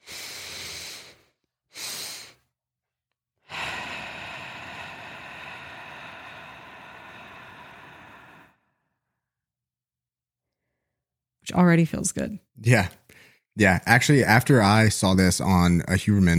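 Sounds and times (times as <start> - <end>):
long steady exhale in a breathing exercise: 0.0 - 2.4, 3.4 - 9.0
two quick inhales in a breathing exercise: 0.0 - 2.4, 3.5 - 8.7, 13.1 - 13.4
speech: 11.5 - 16.3.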